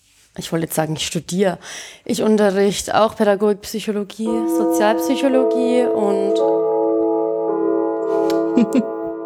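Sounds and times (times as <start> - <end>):
speech: 0.4 - 6.6, 8.6 - 9.0
loud gong chime ringing with a sustained metallic tone: 4.3 - 9.2.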